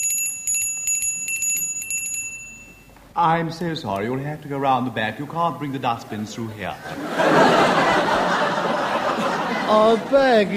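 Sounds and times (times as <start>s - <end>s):
shop counter bell ringing: 0.0s - 3.0s
speech: 3.2s - 7.8s, 9.7s - 10.5s
laughter: 5.8s - 10.5s.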